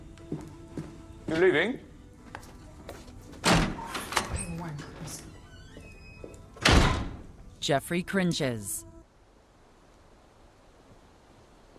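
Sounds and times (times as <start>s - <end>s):
speech: 0.3s - 0.5s, 1.3s - 1.9s, 7.6s - 8.9s
house door closing with a dull heavy thunk: 3.4s - 4.5s, 6.6s - 7.3s.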